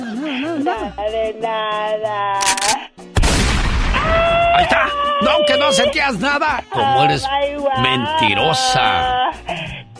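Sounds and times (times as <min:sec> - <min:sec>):
speech: 0:00.6 - 0:02.8, 0:04.0 - 0:09.7
gunshot sound effect with a long noisy tail: 0:03.2 - 0:04.4.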